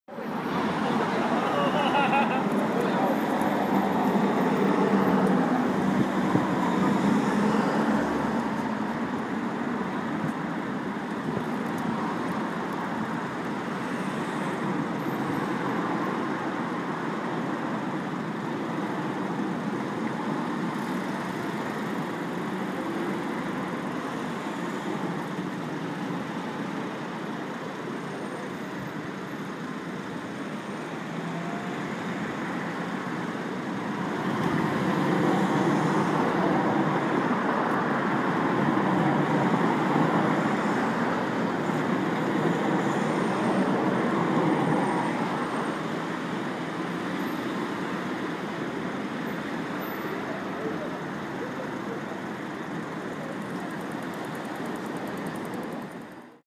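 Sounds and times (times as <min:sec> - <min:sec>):
city traffic: 0:00.0 - 0:56.4
laughter: 0:00.6 - 0:03.4.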